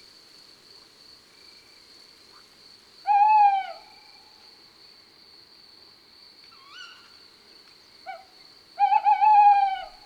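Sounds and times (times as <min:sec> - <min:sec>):
male tawny owl two-part hooting call: 0:08.8 - 0:10.0.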